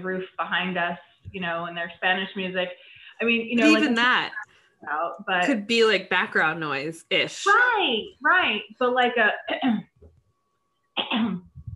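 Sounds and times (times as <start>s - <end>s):
speech: 0.0s - 9.9s, 11.1s - 11.5s
brief low voice sounds: 3.6s - 4.4s
person clearing throat on purpose: 11.0s - 11.7s.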